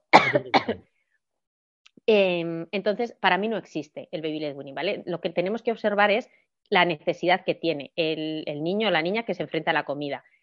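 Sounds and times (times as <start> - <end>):
coughing from a dry throat: 0.0 - 0.8
throat clearing from a dry throat: 0.2 - 0.8
speech: 0.3 - 0.8, 2.1 - 10.3.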